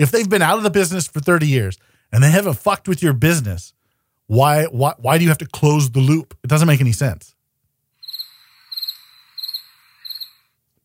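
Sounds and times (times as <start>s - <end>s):
speech: 0.0s - 7.3s
crickets chirping: 8.0s - 10.6s.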